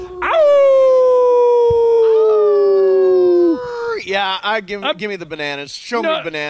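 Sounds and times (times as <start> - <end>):
person imitating a howl: 0.0 - 4.0
speech: 4.3 - 6.4.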